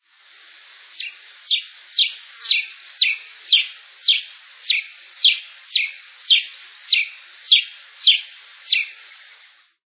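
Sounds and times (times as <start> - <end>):
pipira-preta bird calling: 0.9 - 9.3.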